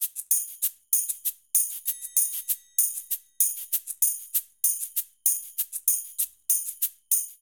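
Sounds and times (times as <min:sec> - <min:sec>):
cabasa: 0:00.0 - 0:07.4
maracas: 0:00.0 - 0:07.4
tambourine: 0:00.0 - 0:07.4.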